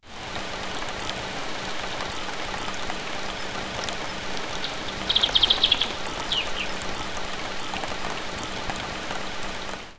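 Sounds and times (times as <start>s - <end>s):
creek flowing: 0.0s - 9.9s
rain drops on a window: 0.0s - 9.9s.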